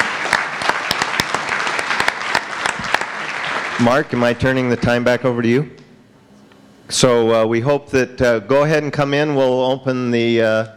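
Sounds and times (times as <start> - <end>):
audience applauding for graduates: 0.0 - 4.6
speech: 3.8 - 5.8, 6.9 - 10.7.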